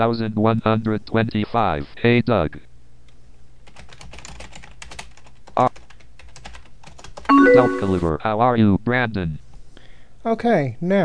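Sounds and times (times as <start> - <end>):
speech: 0.0 - 2.7, 5.6 - 5.8, 7.6 - 9.4, 10.2 - 11.0
computer keyboard typing a message: 3.6 - 8.0.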